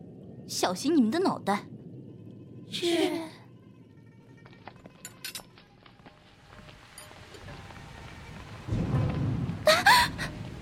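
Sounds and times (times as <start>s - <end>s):
speech: 0.5s - 1.8s, 2.7s - 3.4s
steady rain pattering: 5.8s - 10.5s
deep roll of thunder with loud crack: 8.3s - 10.5s.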